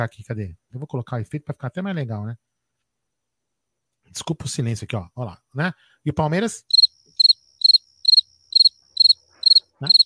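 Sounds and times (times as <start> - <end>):
speech: 0.0 - 2.5, 4.1 - 6.8
cricket chirping: 6.6 - 10.0.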